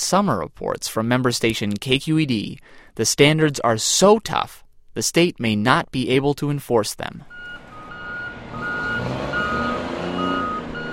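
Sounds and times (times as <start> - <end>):
speech: 0.0 - 7.4
heavy engine rumble of trucks and cranes at a container port: 7.3 - 10.9
repeating high vehicle backup beep: 7.3 - 10.9.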